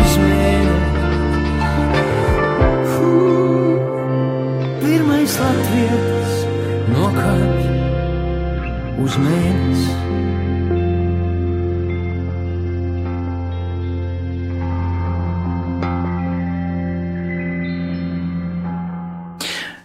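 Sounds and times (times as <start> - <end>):
song with sustained tones, heavy echo and effects: 0.0 - 19.8
speech: 9.2 - 10.2.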